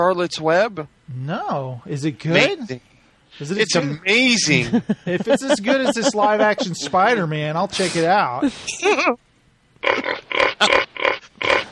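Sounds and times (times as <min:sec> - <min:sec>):
speech: 0:00.0 - 0:09.2, 0:09.8 - 0:10.8
laughter: 0:03.5 - 0:07.9
pig squealing: 0:09.8 - 0:11.7.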